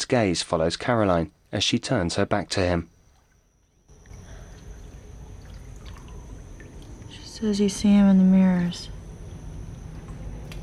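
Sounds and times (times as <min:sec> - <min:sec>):
speech: 0:00.1 - 0:02.9, 0:07.4 - 0:09.0
bath water sloshing and churning: 0:02.9 - 0:07.9.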